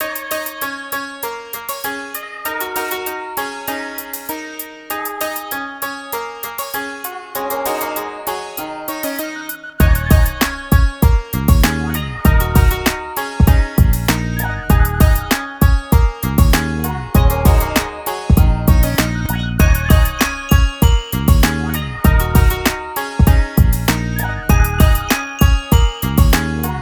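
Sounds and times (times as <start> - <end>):
exotica hip hop loop in E minor: 9.1 - 26.8.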